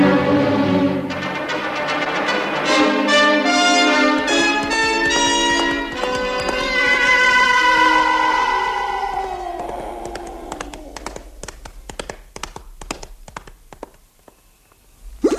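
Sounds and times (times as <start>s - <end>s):
tonal musical backdrop: 0.0s - 11.4s
clip-clopping hoofbeats: 3.8s - 14.4s
horse whinnying: 4.2s - 11.0s.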